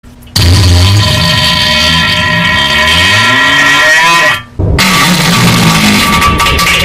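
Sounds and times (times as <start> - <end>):
very loud fart: 0.4 - 6.8.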